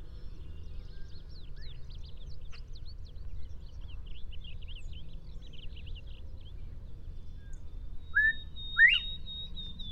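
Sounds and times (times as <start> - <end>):
varied high twittering from other birds: 0.0 - 9.9
Northern bobwhite two-part whistle: 8.2 - 9.1.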